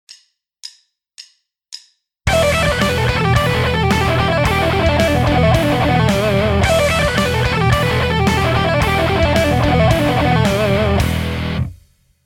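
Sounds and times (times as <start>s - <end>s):
pentatonic shred lick on guitar: 2.3s - 11.7s.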